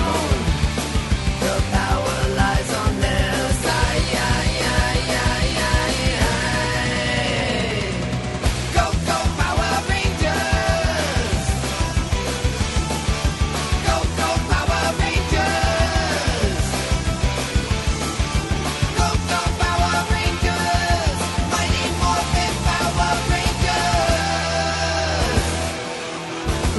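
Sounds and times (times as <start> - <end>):
loud energetic song with driving band and bright sung vocals: 0.0 - 26.7.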